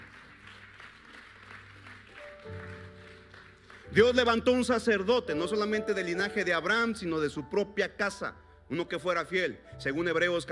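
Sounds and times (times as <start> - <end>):
crowd applauding: 0.0 - 4.7
speech: 3.9 - 10.5.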